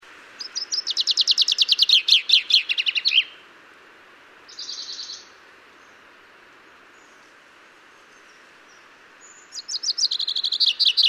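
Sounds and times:
common chaffinch Fringilla coelebs song: 0.0s - 3.5s, 4.4s - 11.0s.

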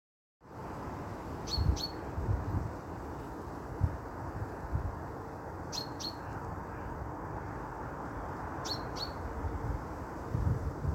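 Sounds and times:
steady low rumble of traffic: 0.4s - 10.9s
common chaffinch Fringilla coelebs giving sharp high pink calls: 1.4s - 2.0s, 5.7s - 7.0s, 8.6s - 9.2s.

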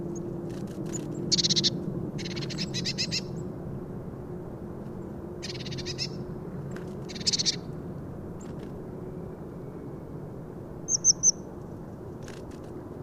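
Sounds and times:
low background hum: 0.0s - 13.0s
Eurasian blue tit Cyanistes caeruleus harsh pulsed churrs: 1.3s - 3.3s, 5.4s - 6.2s, 7.1s - 7.6s, 10.9s - 11.4s.

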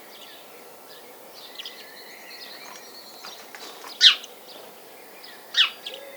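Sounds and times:
faint soft bird notes: 1.5s - 6.1s
house sparrow chirping: 1.5s - 6.1s.

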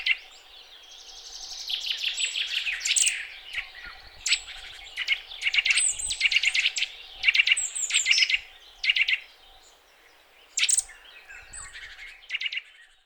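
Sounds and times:
Eurasian nuthatch Sitta europaea calling: 0.0s - 12.9s.

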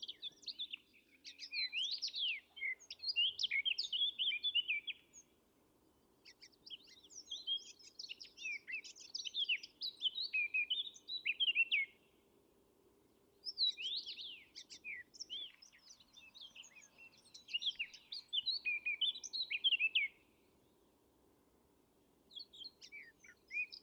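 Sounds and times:
Eurasian blackcap Sylvia atricapilla singing: 0.0s - 5.3s, 6.2s - 12.0s, 13.4s - 20.2s, 22.3s - 23.8s.

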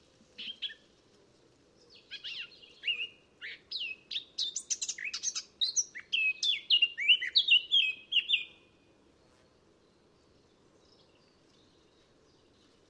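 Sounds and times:
Eurasian blackcap Sylvia atricapilla singing: 2.1s - 8.6s.

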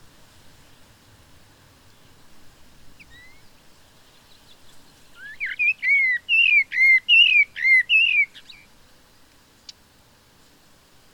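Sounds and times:
common blackbird Turdus merula whistled calls with falling slur: 3.0s - 3.5s, 4.3s - 8.7s.

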